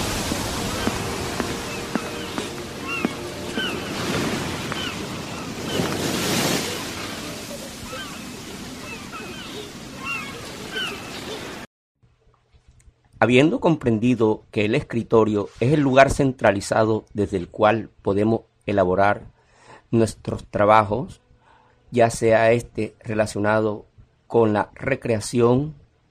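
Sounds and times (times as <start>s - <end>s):
Caribbean Sea waves breaking on a beach: 0.0s - 11.7s
small birds chirping: 0.7s - 6.1s, 6.7s - 11.6s
speech: 13.2s - 19.3s, 19.9s - 21.2s, 21.9s - 25.8s.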